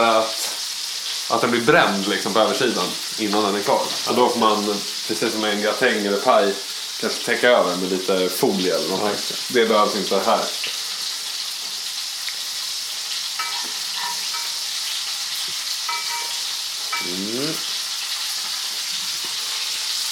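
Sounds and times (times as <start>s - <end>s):
meatballs sizzling in a hot frying pan: 0.0s - 20.0s
speech: 1.3s - 10.8s
utensil clinking and scraping while turning meatballs: 13.4s - 14.6s, 15.9s - 17.1s.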